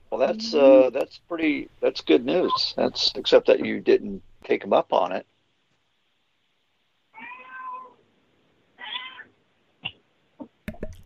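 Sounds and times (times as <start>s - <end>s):
speech: 0.2s - 5.3s
cat meowing: 7.2s - 8.0s, 8.8s - 9.4s.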